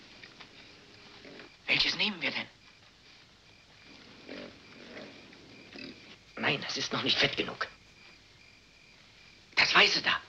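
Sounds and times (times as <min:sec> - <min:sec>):
steady outdoor hiss: 0:00.0 - 0:10.2
speech: 0:02.0 - 0:02.6, 0:06.6 - 0:07.8, 0:09.8 - 0:10.2
pig grunting: 0:04.0 - 0:06.2.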